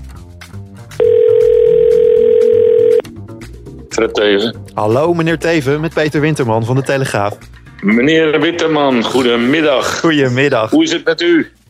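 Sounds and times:
telephone dial tone as a call is placed: 1.0 - 3.0
speech: 4.0 - 11.6.

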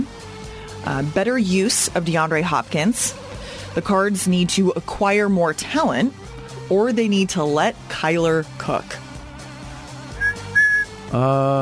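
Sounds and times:
speech: 0.8 - 9.0, 11.1 - 11.5
person whistling short thin notes: 10.2 - 10.9.

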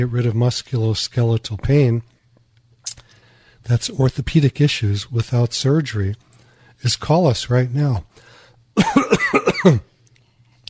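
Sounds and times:
speech: 0.0 - 2.1, 3.6 - 8.2, 8.8 - 9.9
faint low hum: 0.0 - 10.6
rapid coughs from a speaker with a scratchy throat in a studio: 8.8 - 9.9
raspy throat clearing: 8.8 - 9.9.

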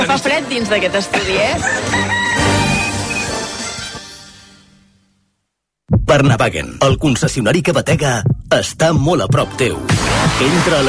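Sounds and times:
speech: 0.1 - 2.6, 6.1 - 10.8
rooster crowing: 1.5 - 3.3.

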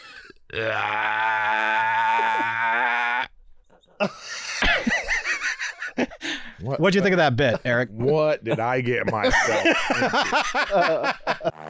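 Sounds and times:
loud drawn-out resonant burp: 0.0 - 3.4
speech: 0.5 - 1.2, 6.6 - 11.6
laughter: 4.0 - 6.2, 7.4 - 11.6.

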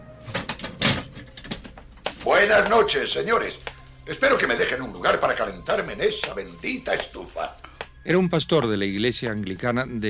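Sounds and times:
glass door of a room flung open with force: 0.3 - 1.7
speech: 2.4 - 10.0.

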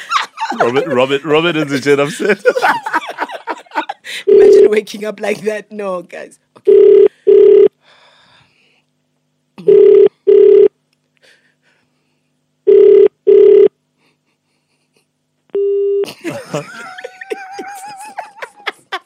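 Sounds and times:
lively laughter: 0.0 - 4.2, 16.0 - 19.0
speech: 0.5 - 3.0, 4.1 - 7.1, 16.3 - 16.9
telephone ringing down the line in double bursts: 4.3 - 4.7, 6.7 - 7.7, 9.7 - 10.7, 12.7 - 13.7.

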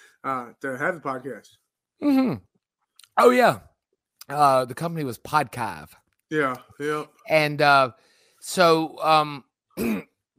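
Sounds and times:
speech: 0.2 - 2.5, 3.2 - 3.7, 4.3 - 10.1
person coughing and clearing the throat: 2.0 - 2.5, 9.8 - 10.2.

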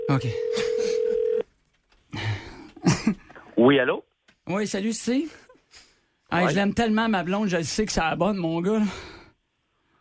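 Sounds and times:
telephone ringing with electronic ring tone: 0.0 - 1.4
speech: 0.1 - 0.7, 3.6 - 5.4, 6.3 - 9.1.

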